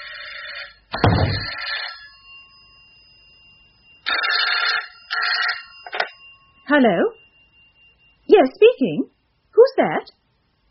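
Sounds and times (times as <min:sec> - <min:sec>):
telephone bell ringing in rattling bursts: 0:00.0 - 0:08.2
dull thump: 0:01.0 - 0:01.5
speech: 0:06.7 - 0:07.2, 0:08.4 - 0:09.1, 0:09.8 - 0:10.2.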